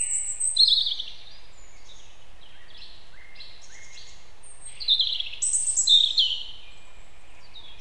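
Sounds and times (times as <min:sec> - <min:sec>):
European robin Erithacus rubecula singing: 0:00.0 - 0:07.7
faint background hiss: 0:00.0 - 0:07.7.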